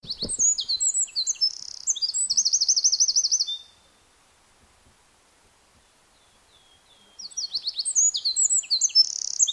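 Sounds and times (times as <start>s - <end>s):
Troglodytes troglodytes Eurasian wren song of loud rapid high trills: 0.0s - 3.8s, 6.2s - 9.5s.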